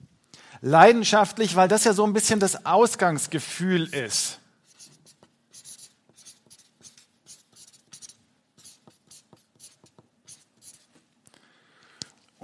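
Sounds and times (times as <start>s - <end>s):
speech: 0.6s - 4.4s
pen handwriting on paper: 4.6s - 11.0s.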